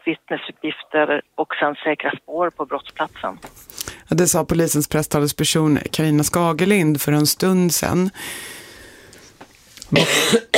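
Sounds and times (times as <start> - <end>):
speech: 0.0 - 8.6, 9.9 - 10.5
person coughing: 9.9 - 10.5.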